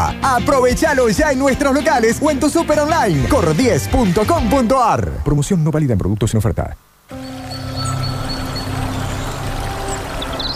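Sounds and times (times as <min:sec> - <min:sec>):
speech: 0:00.2 - 0:06.9
stream water rushing: 0:07.1 - 0:10.5.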